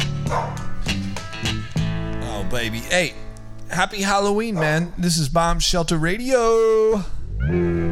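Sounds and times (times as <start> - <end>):
dogs barking excitedly: 0.2 - 1.0, 4.5 - 4.9
speech: 2.5 - 7.8.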